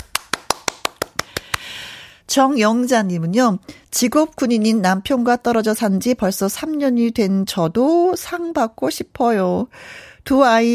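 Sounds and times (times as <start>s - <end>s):
crisp hand claps of applause: 0.0s - 1.7s
speech: 2.3s - 10.7s.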